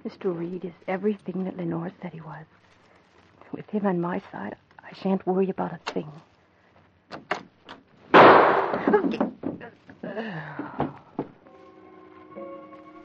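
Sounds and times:
speech: 0.0 - 2.8, 3.5 - 6.3, 8.7 - 10.9
gunshot at the doorway of a home: 8.1 - 8.8.

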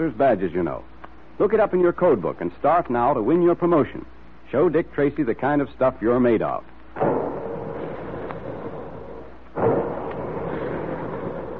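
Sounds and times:
speech: 0.0 - 7.2
big guns firing: 7.0 - 11.5.

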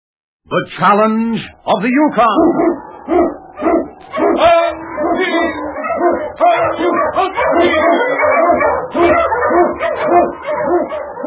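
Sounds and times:
speech: 0.5 - 3.4
Eskimo sled dog barking, yipping and howling excitedly: 2.2 - 11.2.

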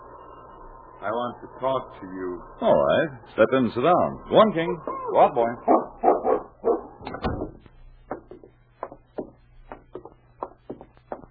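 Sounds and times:
speech: 1.0 - 6.0
dog barking and yipping: 4.9 - 7.0.

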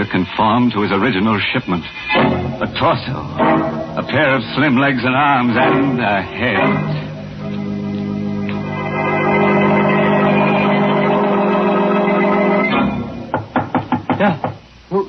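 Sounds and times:
speech: 0.0 - 7.0
sustained humming musical drone: 2.1 - 13.4
knocking on an alley door: 13.3 - 14.6.

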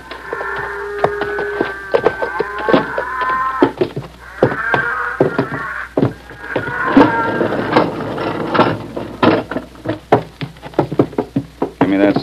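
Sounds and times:
cattle lowing inside a barn: 0.0 - 11.4
knocks and shuffling in a barn: 0.0 - 12.2.

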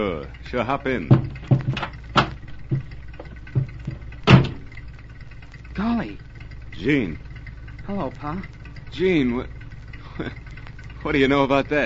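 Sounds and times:
speech: 0.0 - 1.8, 5.8 - 7.3, 7.9 - 9.6, 10.2 - 10.4, 11.0 - 11.8
truck engine idling at a stop: 0.0 - 11.8
short clunks and knocks: 0.8 - 5.0.

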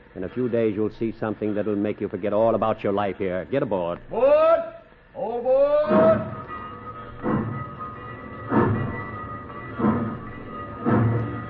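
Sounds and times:
speech: 0.2 - 6.3
train rolling along the tracks: 5.9 - 11.4
train wheels clacking over rail joints: 5.9 - 11.4.

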